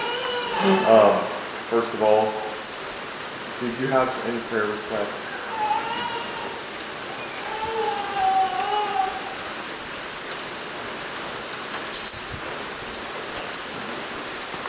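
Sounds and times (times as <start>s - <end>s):
steady rain: 0.0s - 14.6s
speech: 0.6s - 2.4s, 3.6s - 5.3s
sharp high-pitched chirp: 11.9s - 12.5s.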